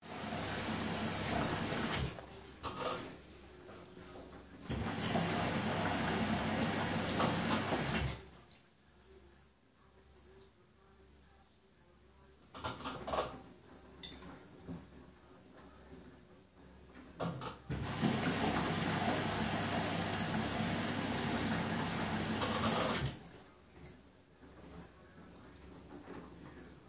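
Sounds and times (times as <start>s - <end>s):
washing machine: 0.0s - 3.1s, 4.6s - 8.3s, 17.2s - 23.3s.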